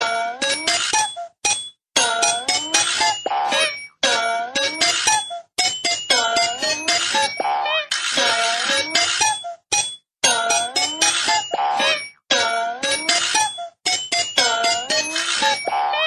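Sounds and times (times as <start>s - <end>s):
funny tune: 0.0s - 16.0s.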